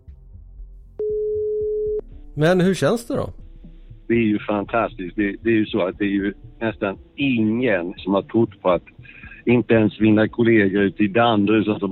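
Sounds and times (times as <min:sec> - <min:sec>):
telephone ringback tone: 0:01.0 - 0:02.0
speech: 0:02.4 - 0:03.4, 0:04.1 - 0:11.8.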